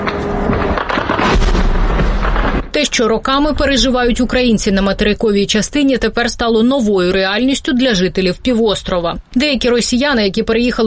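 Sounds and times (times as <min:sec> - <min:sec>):
deep low boom: 0:00.0 - 0:02.8
loud explosion at night: 0:00.0 - 0:02.8
crackling bursts: 0:00.0 - 0:05.8
speech: 0:02.8 - 0:10.8.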